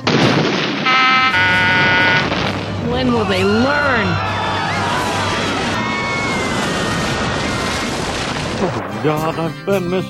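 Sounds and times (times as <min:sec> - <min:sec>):
loud close-range explosion: 0:00.0 - 0:03.0, 0:05.6 - 0:09.4
speech: 0:03.0 - 0:04.3, 0:08.6 - 0:10.0.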